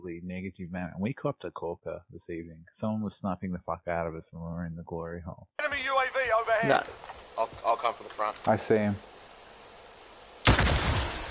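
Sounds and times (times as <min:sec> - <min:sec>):
speech: 0:00.0 - 0:09.1
RPG rocket launcher firing in a video game: 0:10.4 - 0:11.2.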